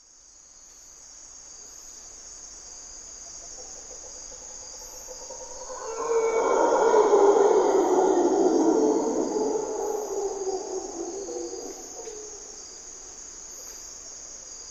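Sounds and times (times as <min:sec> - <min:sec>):
high-pitched insect drone: 0:03.4 - 0:13.8
mantled howler monkey roar in primary hardwood forest, Corcovado National Park, Costa Rica: 0:03.7 - 0:12.6.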